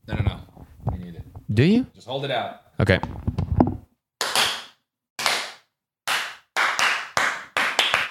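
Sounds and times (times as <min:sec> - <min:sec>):
speech: 0:01.5 - 0:03.2
sharp hand claps with tails: 0:04.2 - 0:08.1.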